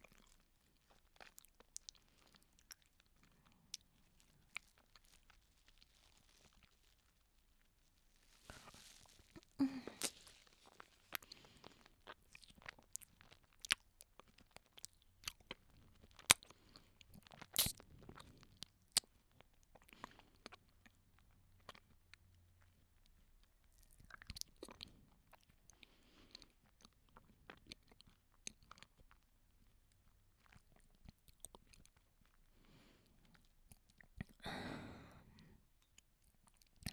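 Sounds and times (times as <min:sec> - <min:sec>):
person chewing and eating a banana: 0:00.0 - 0:07.3, 0:08.2 - 0:34.5, 0:35.3 - 0:36.9.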